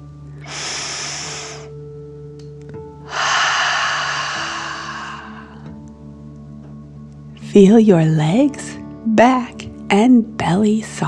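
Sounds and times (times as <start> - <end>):
deep breath drawn in and forcefully exhaled: 0.4 - 1.8, 3.0 - 5.8
speech: 7.6 - 11.0.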